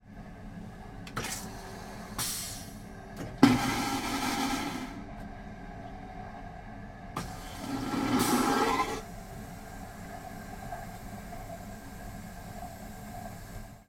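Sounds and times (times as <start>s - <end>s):
train vacuum toilet flushing: 3.4s - 5.0s, 7.2s - 9.8s.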